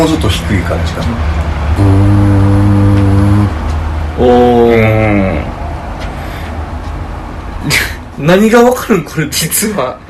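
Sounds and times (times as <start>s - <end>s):
speech: 0.0s - 2.2s, 4.2s - 5.3s, 7.6s - 10.0s
voice imitating the deep steam whistle of a large ship leaving port: 1.8s - 3.6s.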